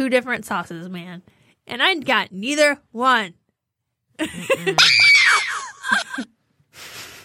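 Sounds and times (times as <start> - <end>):
speech: 0.0 - 3.4, 4.2 - 5.0
laughter: 4.2 - 6.4
loud high-pitched scream: 4.8 - 5.8.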